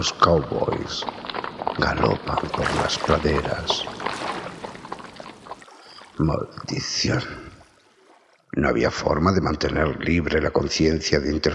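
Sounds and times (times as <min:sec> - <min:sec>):
speech: 0:00.0 - 0:01.2, 0:01.8 - 0:04.0, 0:06.2 - 0:07.5, 0:08.6 - 0:11.5
waves breaking on a beach: 0:00.0 - 0:08.8.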